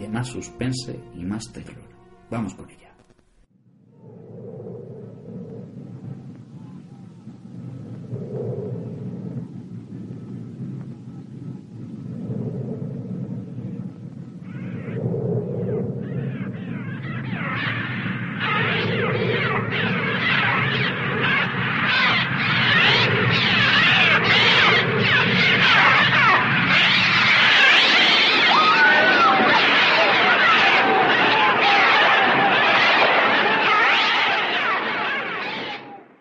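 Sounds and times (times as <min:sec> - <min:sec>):
speech: 0:00.1 - 0:02.9
low rumble: 0:03.2 - 0:33.2
birds screeching in a film bird attack scene: 0:16.0 - 0:35.9
wings flapping: 0:16.0 - 0:36.0.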